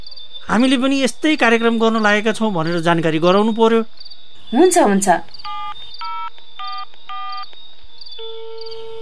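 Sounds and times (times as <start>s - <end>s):
speech: 0.5s - 5.4s
telephone ringing tone: 5.5s - 7.5s, 8.2s - 9.0s.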